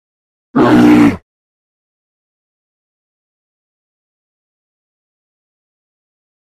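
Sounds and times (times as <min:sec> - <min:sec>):
grizzly bear growling: 0:00.6 - 0:01.2.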